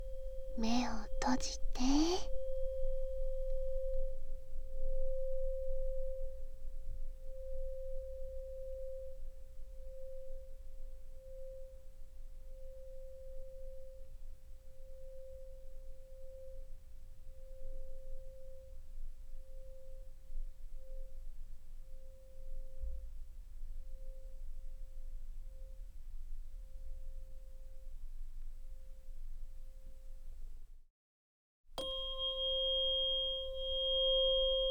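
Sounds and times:
speech: 0:00.6 - 0:02.4
vibrating tuning fork ringing a pure steady tone: 0:02.3 - 0:25.0, 0:31.8 - 0:34.6.

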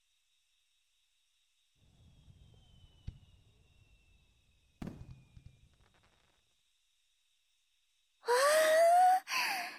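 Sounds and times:
fireworks bursts at a fireworks show: 0:01.8 - 0:06.5
person exclaiming: 0:08.3 - 0:09.7.

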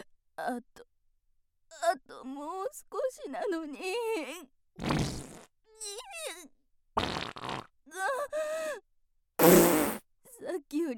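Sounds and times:
speech: 0:00.5 - 0:00.9, 0:01.7 - 0:06.1, 0:10.4 - 0:10.9
fart from someone with a cramping stomach: 0:04.8 - 0:05.5, 0:07.0 - 0:07.7, 0:09.4 - 0:10.1.

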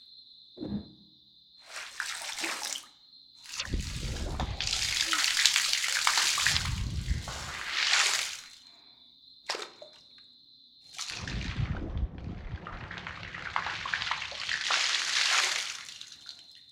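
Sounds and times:
warm water poured over a head during hair washing: 0:01.7 - 0:08.7, 0:10.9 - 0:16.5.

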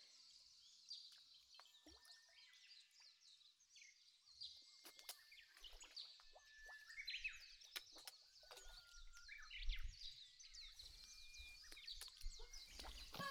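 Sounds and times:
birds chirping and tweeting: 0:05.2 - 0:13.2.

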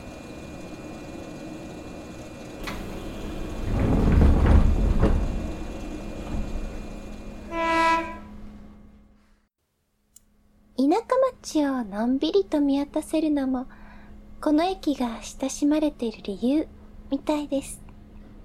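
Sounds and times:
single-car one-man local train rumbling past: 0:00.0 - 0:09.1
brief harmonic train horn or chime: 0:07.5 - 0:08.6
speech: 0:11.0 - 0:13.8, 0:14.4 - 0:17.8.

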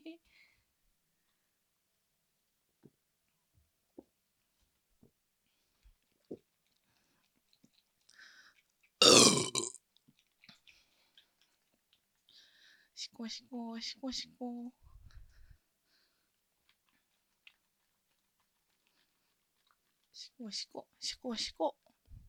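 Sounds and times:
small mouth sounds: 0:06.0 - 0:11.6
burp: 0:09.0 - 0:09.8
speech: 0:13.0 - 0:14.8, 0:20.4 - 0:21.8.

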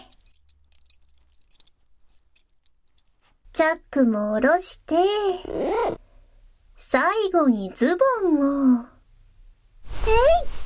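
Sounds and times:
belt buckle being undone: 0:00.0 - 0:03.3
speech: 0:03.6 - 0:06.0, 0:06.9 - 0:08.9, 0:10.1 - 0:10.6.

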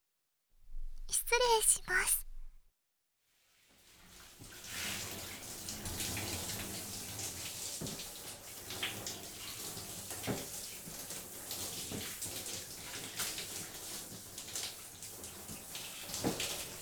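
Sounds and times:
speech: 0:01.1 - 0:02.2
shower water running over hair during a hair wash: 0:03.5 - 0:16.8.

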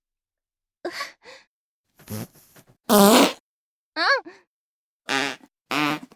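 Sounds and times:
fart sounds: 0:02.0 - 0:03.4, 0:05.1 - 0:06.1
speech: 0:02.9 - 0:03.3.

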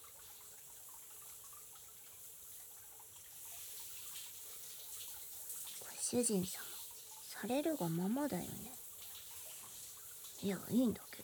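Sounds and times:
running water rinsing a body: 0:03.1 - 0:11.2
speech: 0:06.1 - 0:06.8, 0:07.4 - 0:08.8, 0:10.4 - 0:11.2.

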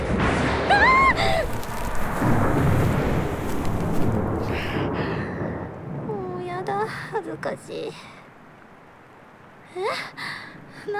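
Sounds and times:
loud sustained roll of thunder: 0:00.0 - 0:07.7
speech: 0:07.4 - 0:08.2.

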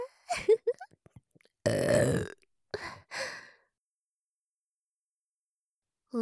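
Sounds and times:
loud rough gravelly burp: 0:01.7 - 0:02.9
short breathy vocal noises: 0:01.7 - 0:03.4.

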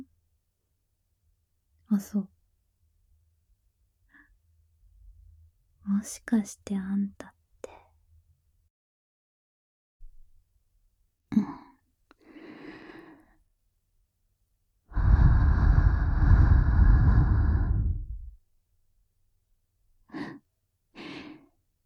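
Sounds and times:
speech: 0:02.0 - 0:02.4, 0:06.0 - 0:07.4
breath blown gently against the ear: 0:14.9 - 0:18.4.

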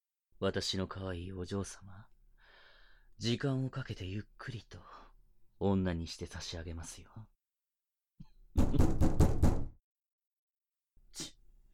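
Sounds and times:
speech: 0:00.4 - 0:02.1, 0:03.2 - 0:05.0, 0:05.6 - 0:07.4
loud knocking on a door: 0:08.5 - 0:09.8.

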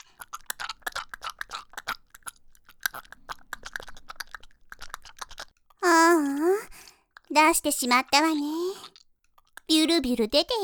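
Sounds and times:
rapid irregular mouth clicks and smacks: 0:00.0 - 0:10.5
wet chewing and mouth noises: 0:00.0 - 0:10.6
speech: 0:07.4 - 0:08.6, 0:09.7 - 0:10.6.

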